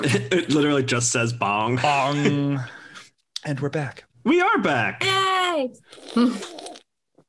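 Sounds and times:
speech: 0.0 - 2.8, 3.4 - 6.7
person slurping a drink: 5.8 - 7.0.

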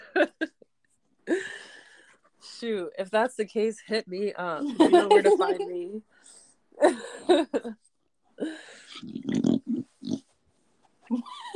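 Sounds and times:
speech: 2.6 - 6.2, 6.8 - 7.8
laughter: 4.6 - 5.8
female dog snorting and grunting: 8.8 - 10.3.

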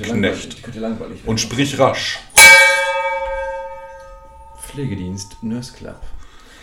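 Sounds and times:
speech: 0.0 - 2.6, 4.8 - 6.2
bell strike announcing a category: 2.4 - 6.0.

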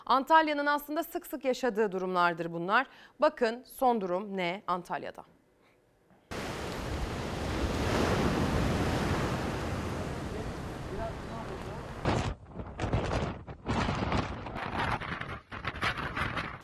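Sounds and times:
speech: 0.1 - 5.4
strong lodos windstorm wind roaring: 6.3 - 16.6.

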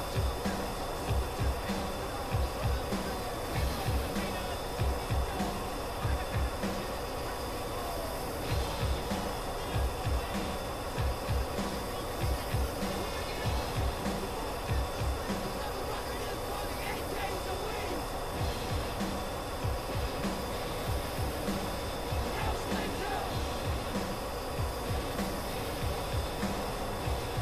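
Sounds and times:
faint voice-like sounds in jet fighter cockpit: 0.0 - 27.4
jet fighter cockpit roar in cruise: 0.0 - 27.4.

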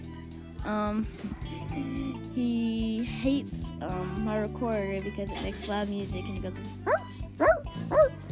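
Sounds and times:
speech: 0.6 - 7.2
stub-tailed dog barking: 6.9 - 8.2.

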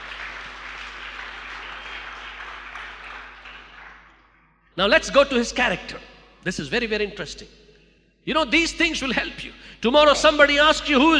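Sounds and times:
congregation clapping: 0.0 - 5.4
speech: 4.8 - 7.6, 8.2 - 11.1.

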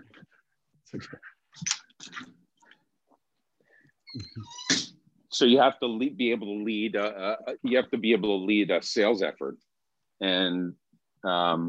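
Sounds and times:
speech: 0.9 - 2.4, 4.1 - 4.8, 5.4 - 11.6
dog thin high whine: 4.1 - 4.9.

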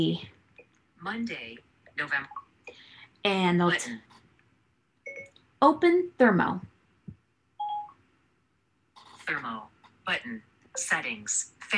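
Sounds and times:
speech: 0.0 - 0.3, 1.0 - 2.4, 3.2 - 4.2, 5.6 - 6.7, 9.3 - 11.7
smartphone keypad tone while unlocking: 5.1 - 5.3, 7.6 - 8.0.

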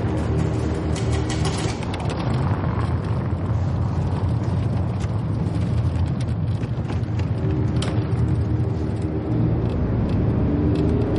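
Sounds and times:
car engine and road noise speeding along city streets: 0.0 - 11.1.

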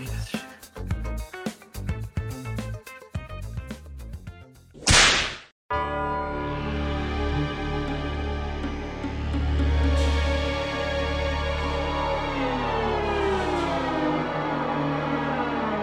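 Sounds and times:
rhythmic music track: 0.0 - 4.7
single loud whip crack with whooshing burst: 4.8 - 5.5
sustained musical passage: 5.7 - 15.8.

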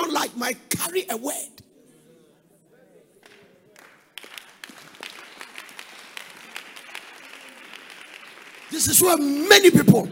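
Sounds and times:
speech: 0.2 - 1.6, 8.7 - 10.0
audience clapping: 3.2 - 10.0.

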